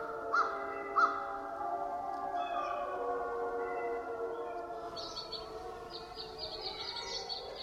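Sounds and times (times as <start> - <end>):
spring chorus of birdsong: 0.0 - 7.6
two wolf packs howling: 0.0 - 7.6
American crow cawing in Canada at dawn: 0.3 - 1.2.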